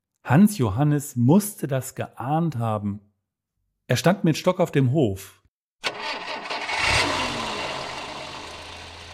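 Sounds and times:
speech: 0.3s - 3.1s, 3.9s - 5.4s
car engine cranking, revving and idling: 5.8s - 9.1s.

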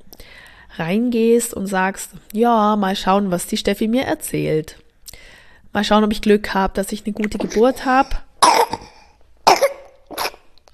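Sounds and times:
speech: 0.8s - 4.8s, 5.7s - 8.8s
baby coughing: 7.4s - 7.8s, 8.4s - 10.5s.

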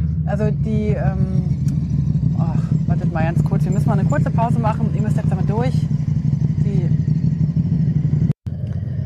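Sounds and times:
two or three motorcycles rumbling by: 0.0s - 9.0s
speech: 0.3s - 1.8s, 2.4s - 6.0s, 6.6s - 7.1s.

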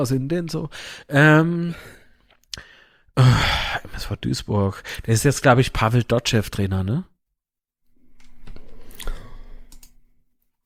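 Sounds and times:
speech: 0.0s - 2.0s, 2.6s - 7.1s
computer mouse clicking: 8.2s - 10.0s.

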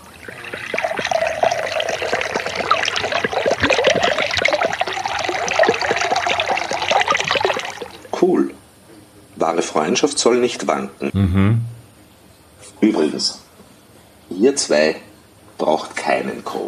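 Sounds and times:
soda water pouring into a glass with crackling fizz: 0.0s - 8.1s
speech: 9.5s - 11.8s, 12.8s - 13.4s, 14.4s - 15.0s, 15.7s - 16.6s.

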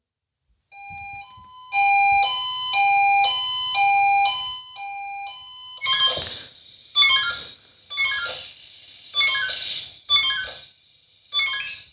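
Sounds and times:
old fire brigade pager alarm tone: 0.7s - 6.3s, 7.0s - 8.5s, 9.1s - 10.7s, 11.3s - 11.9s.

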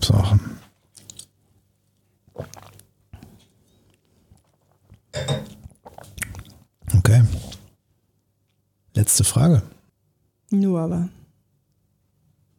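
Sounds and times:
person sipping water from a glass: 0.9s - 1.4s, 2.0s - 7.7s
wet mouth and swallowing noises: 2.2s - 7.7s
speech: 9.1s - 9.8s, 10.8s - 11.2s.

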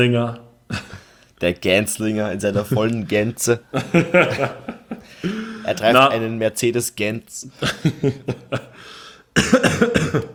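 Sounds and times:
speech: 0.0s - 0.4s, 1.4s - 10.3s
laughter: 2.5s - 6.0s, 7.5s - 8.9s
raspy wheezing breath: 5.0s - 5.7s, 8.7s - 9.4s
fit of short harsh coughs: 8.6s - 10.3s.

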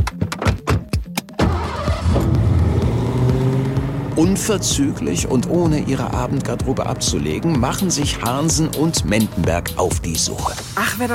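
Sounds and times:
car engine cranking, starting and revving: 1.4s - 8.9s
speech: 4.2s - 11.1s.

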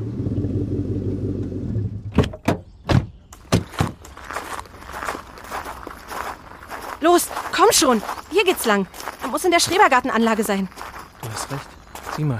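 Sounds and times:
low rumble: 0.0s - 2.4s
footsteps of people setting off on foot: 3.4s - 12.3s
speech: 7.0s - 12.3s.

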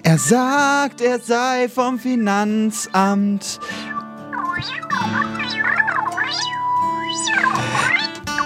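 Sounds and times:
speech: 0.1s - 3.9s, 4.6s - 5.3s
cat meowing: 3.8s - 8.3s.

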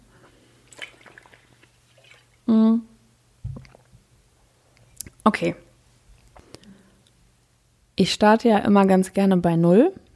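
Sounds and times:
person humming: 2.5s - 3.0s
soft low thump: 3.4s - 3.7s
person slurping and swallowing a sip of water: 3.5s - 4.0s
speech: 5.2s - 5.6s, 8.0s - 10.0s.

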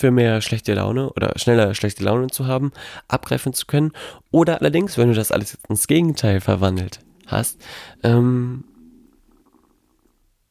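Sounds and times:
speech: 0.0s - 8.7s
stomach growling from hunger: 6.7s - 10.4s.

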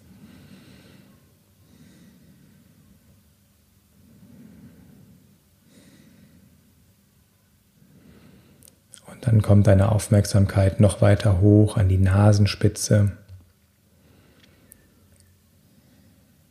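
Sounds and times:
slow steady breathing rushing through the throat: 0.0s - 3.0s, 4.0s - 6.6s, 7.8s - 8.7s, 13.9s - 14.9s, 15.6s - 16.5s
speech: 9.0s - 13.2s.

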